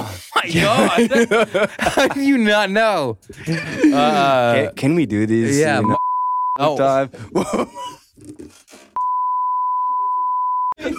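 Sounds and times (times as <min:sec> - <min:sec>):
laughter: 0:00.4 - 0:02.4, 0:03.3 - 0:04.3, 0:07.2 - 0:07.8, 0:10.8 - 0:10.9
speech: 0:00.4 - 0:06.0, 0:06.6 - 0:07.8
loud steady censor bleep: 0:05.8 - 0:06.6, 0:09.0 - 0:10.8.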